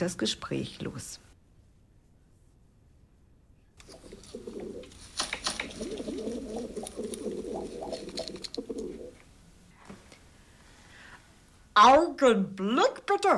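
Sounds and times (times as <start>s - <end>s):
speech: 0.0s - 1.3s, 11.8s - 13.3s
pigeons cooing while being fed: 3.8s - 9.2s
soft fluttering: 3.8s - 9.3s.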